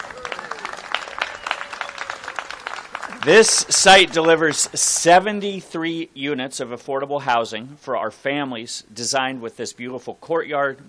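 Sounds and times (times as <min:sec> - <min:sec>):
small crowd applauding outdoors in a plaza in San Francisco: 0:00.0 - 0:05.2
speech: 0:03.2 - 0:10.8.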